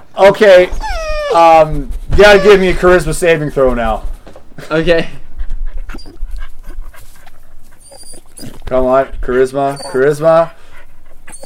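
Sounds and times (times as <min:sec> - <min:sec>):
speech: 0:00.2 - 0:05.2, 0:08.7 - 0:10.6
whiny dog-like vocalizing by a person: 0:00.6 - 0:03.0, 0:05.4 - 0:11.4
person imitating a dog panting: 0:00.6 - 0:04.0, 0:04.7 - 0:11.4.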